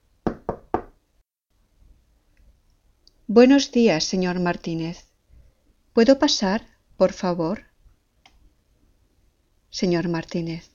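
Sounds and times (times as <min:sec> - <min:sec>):
knocking on a wooden door: 0:00.2 - 0:01.0
speech: 0:03.3 - 0:05.1, 0:06.0 - 0:07.7, 0:09.7 - 0:10.7.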